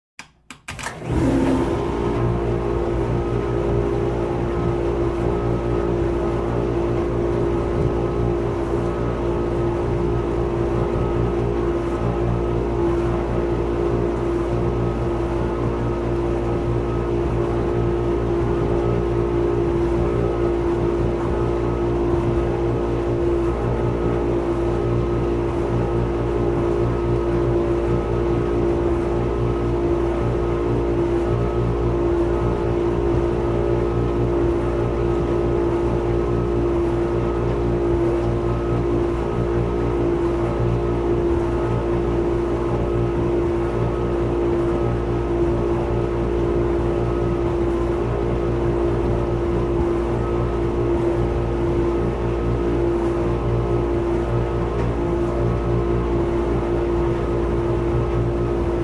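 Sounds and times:
dishwasher draining water: 0.2 - 2.8
dishwasher running a wash cycle: 0.2 - 58.8.

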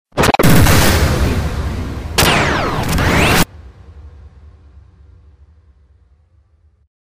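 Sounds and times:
stabs and bursts: 0.1 - 3.5
crash test impact: 0.2 - 6.8.

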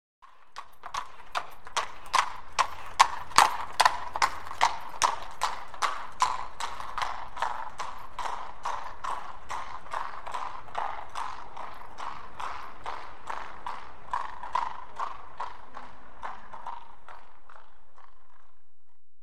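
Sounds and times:
single horse trotting by on cobble: 0.2 - 19.1.

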